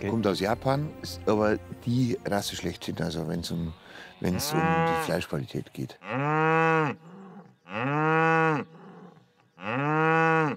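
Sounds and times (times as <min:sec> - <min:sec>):
speech: 0:00.0 - 0:06.4
Wagyu cow from Saxony lowing: 0:03.9 - 0:05.4, 0:06.0 - 0:10.5.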